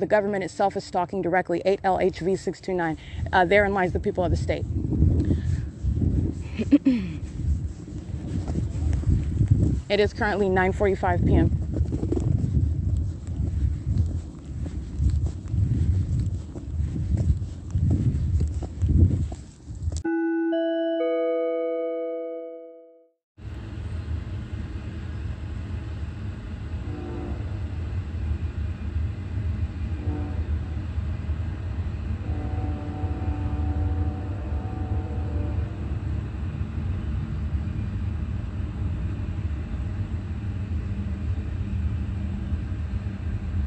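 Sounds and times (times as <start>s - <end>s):
speech: 0.0s - 5.0s, 6.7s - 7.3s, 9.9s - 11.6s
train rolling past with loud steady low rumble: 0.0s - 18.4s, 23.4s - 43.6s
brief tone: 20.1s - 23.1s.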